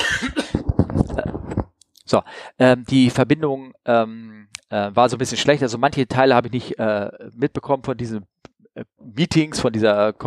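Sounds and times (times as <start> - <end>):
person clearing their throat: 0.0 - 0.6
speech: 2.1 - 10.2.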